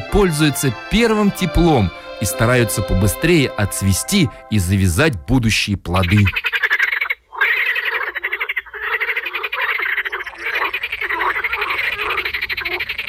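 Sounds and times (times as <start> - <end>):
speech: 0.2 - 6.6
chorus of croaking frogs: 6.0 - 13.0.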